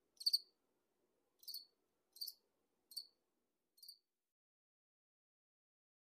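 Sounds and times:
cricket chirping: 0.2 - 0.5, 1.4 - 3.2, 3.8 - 4.0.

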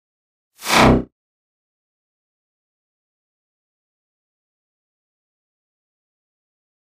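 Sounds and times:
electric whip crack with low-frequency effect: 0.6 - 1.0.

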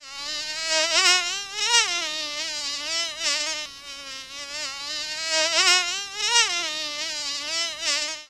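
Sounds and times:
fly buzzing: 0.0 - 8.2.

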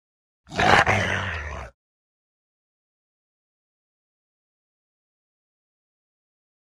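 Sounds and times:
Rottweiler giving a harsh rough growl: 0.5 - 1.8.

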